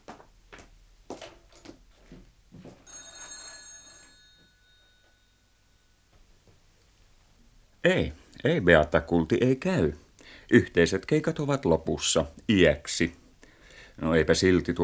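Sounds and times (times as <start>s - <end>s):
telephone bell ringing: 2.8s - 6.1s
speech: 7.8s - 13.2s, 14.0s - 14.8s.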